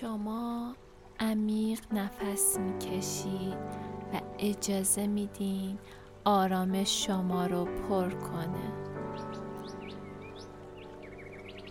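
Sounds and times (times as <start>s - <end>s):
speech: 0.0s - 8.8s
birds singing in trees: 8.5s - 11.6s.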